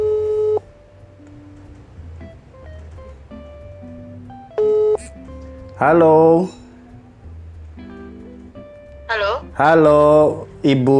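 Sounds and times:
telephone ringback tone on a call not yet answered: 0.0 - 0.7, 4.6 - 5.0
faint sounds: 0.0 - 10.9
speech: 5.8 - 6.6, 9.6 - 10.9.

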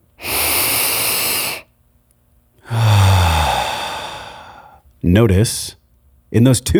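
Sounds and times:
deep exhale through the mouth with low voiced sigh: 0.2 - 1.6, 2.6 - 4.8
long deep inhale through the nose: 0.2 - 1.7, 2.6 - 4.8
speech: 5.0 - 6.7.

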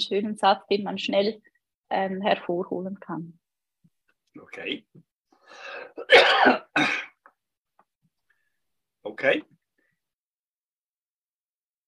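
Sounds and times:
speech: 0.0 - 3.4, 4.4 - 7.0, 9.0 - 9.6
person coughing: 5.9 - 7.2
person clearing throat: 6.0 - 7.2.

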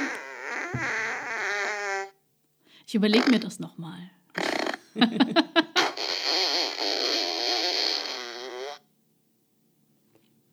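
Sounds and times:
fart sound effect from a friendship book with built-in sound: 0.0 - 2.2, 4.4 - 4.8, 5.8 - 8.8
speech: 0.7 - 1.0, 2.9 - 4.2, 5.0 - 5.7
laughter: 4.9 - 6.0.

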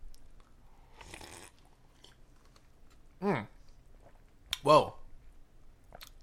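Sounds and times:
person slurping a sip of root beer: 0.9 - 2.2
speech: 4.7 - 5.0.

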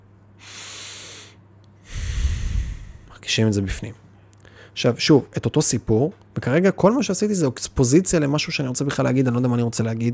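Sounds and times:
deep breath of cool desert air through the nose: 0.4 - 3.1
speech: 3.3 - 4.0, 4.8 - 10.1.

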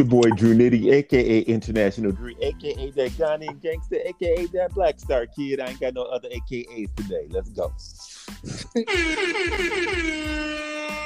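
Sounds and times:
speech: 0.0 - 10.7
air horn blast: 8.9 - 11.0.

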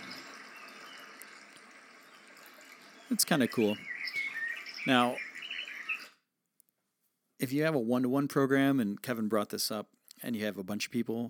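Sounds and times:
flowing water: 0.0 - 6.0
speech: 3.1 - 3.9, 4.8 - 5.3, 7.4 - 11.2.

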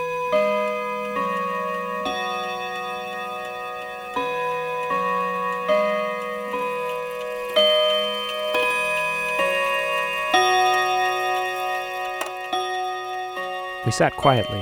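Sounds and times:
ornate ceramic mantel clock chiming a slow ringing melody: 0.0 - 14.6
speech: 13.9 - 14.6.

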